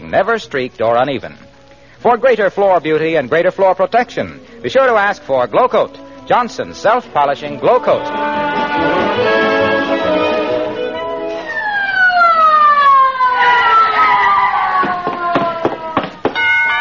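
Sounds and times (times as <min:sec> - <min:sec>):
speech: 0:00.1 - 0:01.4, 0:02.0 - 0:09.4
ambulance siren wailing: 0:07.8 - 0:16.8
sharp knocks: 0:14.8 - 0:16.5.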